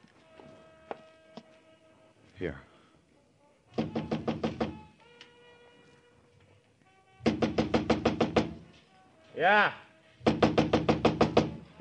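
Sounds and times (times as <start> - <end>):
speech: 2.4 - 2.7, 9.4 - 9.8
rapid insistent knocking on a door: 3.7 - 4.9, 7.2 - 8.7, 10.2 - 11.6.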